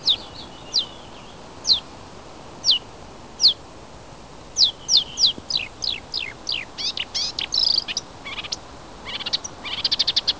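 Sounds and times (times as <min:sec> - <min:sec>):
Acrocephalus palustris singing: 0:00.0 - 0:01.9, 0:02.6 - 0:03.6, 0:04.6 - 0:10.3.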